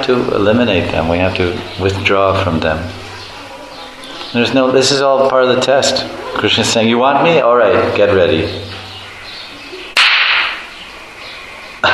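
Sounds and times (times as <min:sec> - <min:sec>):
speech: 0:00.0 - 0:03.0, 0:04.3 - 0:08.7
loud sharp whip cracks: 0:10.0 - 0:10.7.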